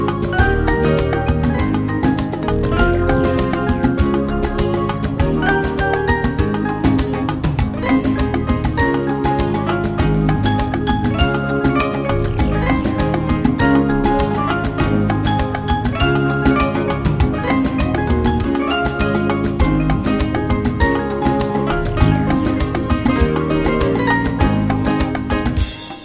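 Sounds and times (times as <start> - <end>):
Latin jazz music: 0.0 - 26.0.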